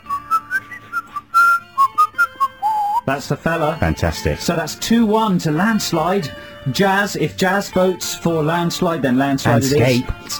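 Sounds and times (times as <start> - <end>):
person whistling a pop song intro: 0.0 - 3.1
speech: 3.1 - 10.3.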